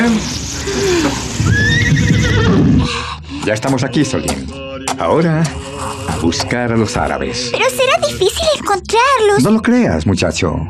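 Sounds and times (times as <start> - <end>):
speech: 0.0 - 0.9, 3.4 - 10.6
horse whinnying as its rider reins it to a halt in the desert: 0.6 - 2.9.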